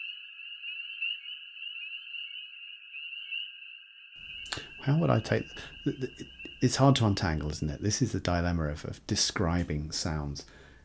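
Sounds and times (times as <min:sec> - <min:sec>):
spring peepers calling in a dense chorus: 0:00.0 - 0:07.8
speech: 0:04.4 - 0:10.6.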